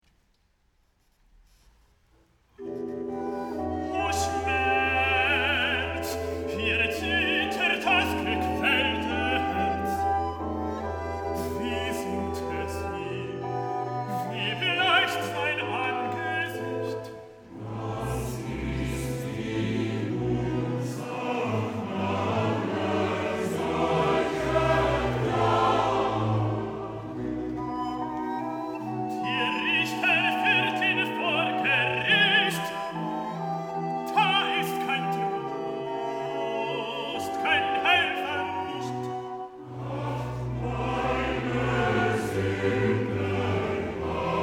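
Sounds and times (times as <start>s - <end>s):
madrigal choir singing: 2.6s - 44.4s.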